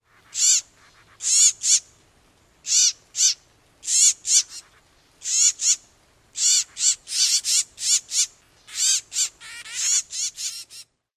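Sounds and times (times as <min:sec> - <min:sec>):
nestling calls: 0:00.0 - 0:02.0, 0:02.6 - 0:11.0.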